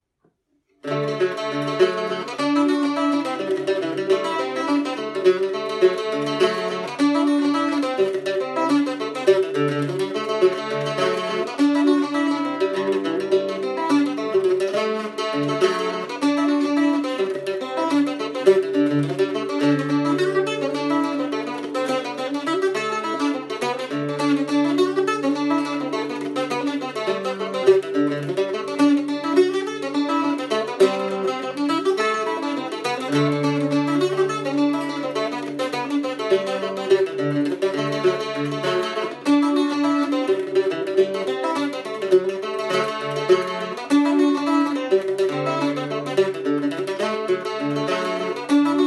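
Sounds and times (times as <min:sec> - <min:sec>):
octave mandola: 0:00.0 - 0:48.8.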